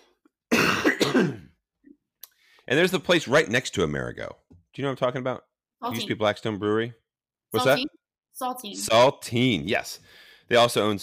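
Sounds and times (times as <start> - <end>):
single raspy throat-clearing cough: 0.5 - 1.6
speech: 2.7 - 11.0.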